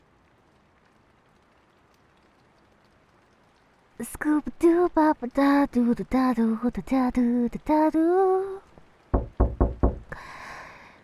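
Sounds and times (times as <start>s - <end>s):
speech: 4.0s - 8.6s
firm knocking on a door: 9.2s - 10.2s.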